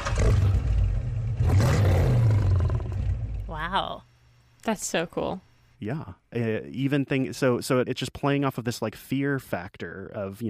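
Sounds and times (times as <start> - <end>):
animal growling roar: 0.0 - 3.4
car engine rumble: 0.0 - 3.5
speech: 4.7 - 10.4.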